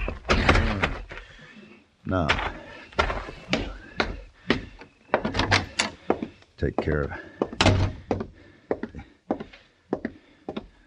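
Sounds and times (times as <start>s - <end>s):
door thumping and rattling as it is pushed open: 0.0s - 1.1s, 2.3s - 5.9s, 7.6s - 8.3s
speech: 2.1s - 2.5s, 6.6s - 7.3s.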